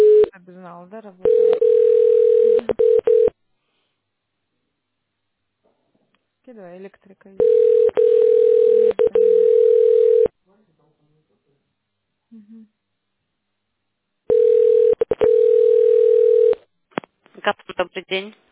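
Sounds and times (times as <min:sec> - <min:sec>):
telephone ringing tone on an unanswered call: 0:00.0 - 0:00.3, 0:01.2 - 0:03.3, 0:07.4 - 0:10.3, 0:14.3 - 0:16.6
speech: 0:00.7 - 0:01.5, 0:06.5 - 0:09.3, 0:12.3 - 0:12.8, 0:17.5 - 0:18.4.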